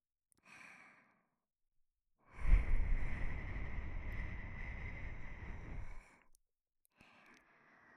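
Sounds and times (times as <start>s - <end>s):
soft inhale: 0.4s - 1.3s, 2.3s - 6.4s, 7.0s - 7.9s.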